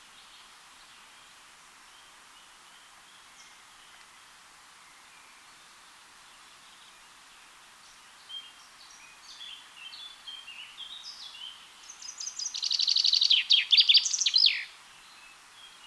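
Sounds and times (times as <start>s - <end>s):
common chaffinch Fringilla coelebs song: 0.0s - 15.8s.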